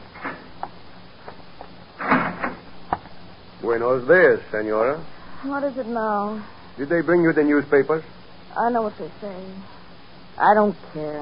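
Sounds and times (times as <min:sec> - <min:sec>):
heavy jail cell door being opened: 0:02.0 - 0:02.6
speech: 0:03.7 - 0:09.8, 0:10.4 - 0:11.1.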